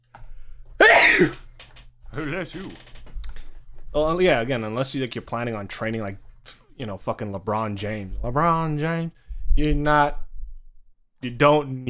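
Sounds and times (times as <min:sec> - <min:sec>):
person sneezing: 0:00.8 - 0:01.5
speech: 0:01.2 - 0:01.4, 0:02.1 - 0:02.9, 0:03.9 - 0:10.2, 0:11.2 - 0:11.8.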